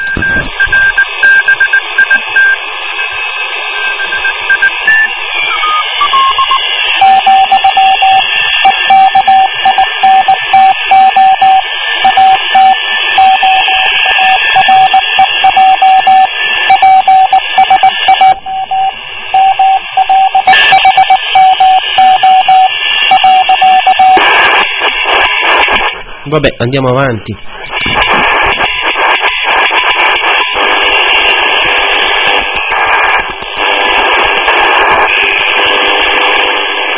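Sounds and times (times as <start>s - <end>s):
Morse code signal beeping over radio: 0.0s - 2.6s, 3.8s - 24.2s
radio static hiss and crackling interference: 0.0s - 36.9s
speech: 26.3s - 27.6s.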